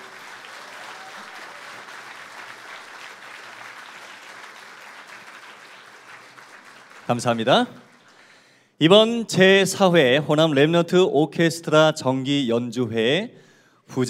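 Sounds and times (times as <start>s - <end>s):
audience applause at an orchestra concert: 0.0s - 8.3s
speech: 7.1s - 7.8s, 8.8s - 14.0s.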